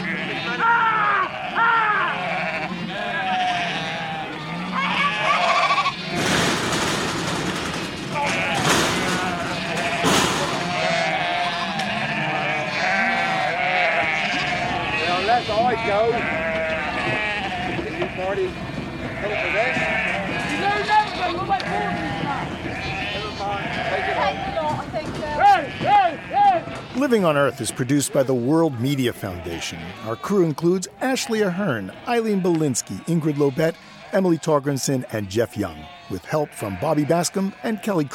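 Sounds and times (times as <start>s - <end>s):
large flock of sheep bleating while being rounded up for shearing: 0.0s - 38.1s
speech: 27.2s - 38.1s.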